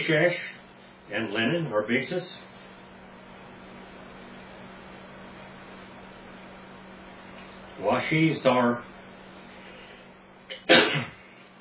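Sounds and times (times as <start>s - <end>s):
speech: 0.0s - 2.5s, 7.8s - 8.9s, 10.5s - 11.2s
person sneezing: 10.5s - 11.5s.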